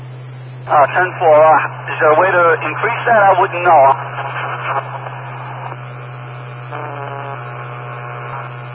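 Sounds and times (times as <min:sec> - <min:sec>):
CB radio interference static: 0:00.0 - 0:08.7
constant low hum of CB radio interference: 0:00.0 - 0:08.7
speech: 0:00.7 - 0:04.4.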